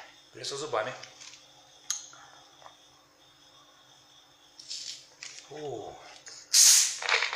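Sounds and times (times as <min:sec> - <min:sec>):
speech: 0:00.4 - 0:01.1, 0:05.5 - 0:06.1
gas hissing out of a soda bottle as the cap is twisted open: 0:06.5 - 0:07.3.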